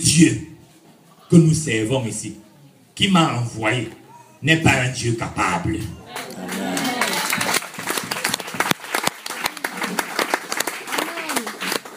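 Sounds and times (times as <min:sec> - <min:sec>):
speech: 0:00.0 - 0:00.5, 0:01.3 - 0:02.4, 0:03.0 - 0:06.8
crowd applauding: 0:06.1 - 0:11.9.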